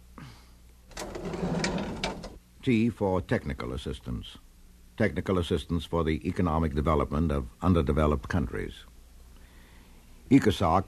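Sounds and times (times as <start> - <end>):
drawer squeaking as it is pulled open: 0.9 - 2.4
speech: 2.6 - 8.9, 10.3 - 10.8.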